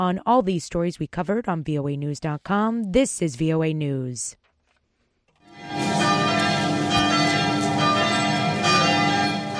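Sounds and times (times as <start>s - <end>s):
speech: 0.0s - 4.4s
church bells ringing in a rural French town: 5.4s - 9.5s.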